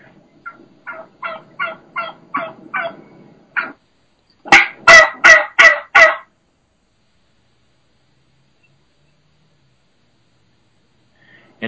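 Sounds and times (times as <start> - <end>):
wild turkey hen yelping near a gobbler: 0.4 - 3.8, 4.5 - 6.3.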